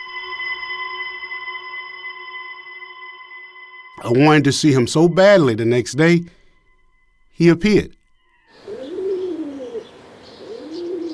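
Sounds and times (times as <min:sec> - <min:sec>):
speech: 0:04.0 - 0:06.4, 0:07.4 - 0:08.0
pigeons cooing in a backyard: 0:08.5 - 0:11.1.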